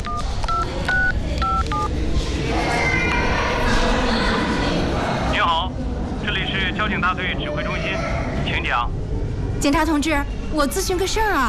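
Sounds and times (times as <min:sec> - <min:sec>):
telephone keypad dialing tones: 0:00.0 - 0:01.9
steady hum: 0:00.0 - 0:11.4
speech: 0:09.6 - 0:11.4.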